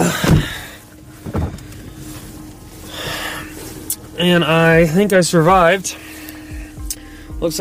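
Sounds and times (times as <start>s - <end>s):
car door shutting with a heavy thump: 0.0s - 4.1s
rustling: 0.0s - 6.8s
speech: 4.2s - 6.1s, 7.4s - 7.6s.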